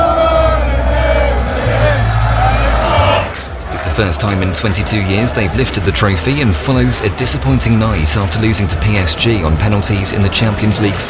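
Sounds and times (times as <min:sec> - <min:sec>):
thousands of football fans cheering in a street: 0:00.0 - 0:11.0
speech: 0:04.0 - 0:11.0.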